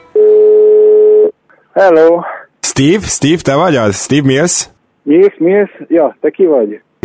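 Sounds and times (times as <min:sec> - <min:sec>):
telephone ringback tone on a call: 0:00.0 - 0:01.3
speech: 0:01.8 - 0:06.9.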